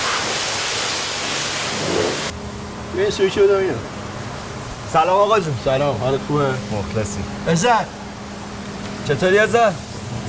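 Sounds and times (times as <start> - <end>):
water spraying onto a surface: 0.0 - 2.3
speech: 3.0 - 3.9, 4.9 - 8.0, 9.1 - 10.2.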